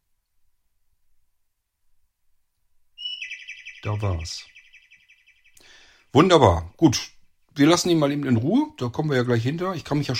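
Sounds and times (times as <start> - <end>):
software notification chirping: 3.0 - 4.9
speech: 3.8 - 4.6, 6.1 - 10.1.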